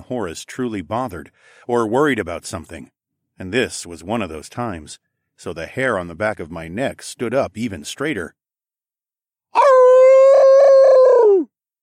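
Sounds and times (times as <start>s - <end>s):
speech: 0.1s - 8.4s
wolf-like howl in a forest: 9.6s - 11.5s.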